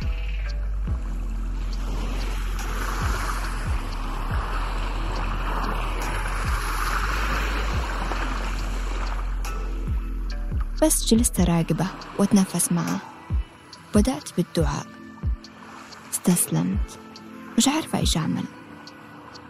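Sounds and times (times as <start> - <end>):
steady rushing wash of sea water: 0.0 - 10.4, 11.3 - 19.4
small waves lapping with soft low thuds: 0.0 - 19.4
speech: 10.8 - 13.1, 14.0 - 15.0, 16.2 - 17.0, 17.6 - 18.6.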